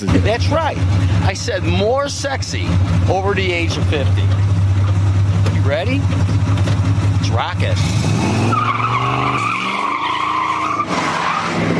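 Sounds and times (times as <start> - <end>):
speech: 0.0 - 4.5, 5.6 - 6.6, 7.3 - 8.9
car engine roaring: 0.0 - 11.7
car tire squeal as a car peels out: 7.8 - 11.7.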